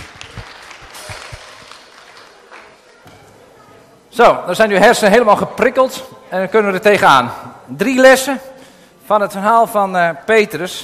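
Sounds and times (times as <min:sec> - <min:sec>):
crowd applauding: 0:00.0 - 0:03.0
speech: 0:04.2 - 0:08.5, 0:09.1 - 0:10.8.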